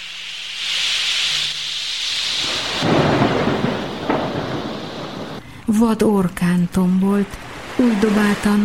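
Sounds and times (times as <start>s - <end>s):
hissing rain at sea: 0.0s - 8.6s
strong gusting wind tearing at the sails of a sailing ship at sea: 2.4s - 5.7s
deep rumbling thunder: 2.4s - 5.8s
speech: 5.7s - 8.6s.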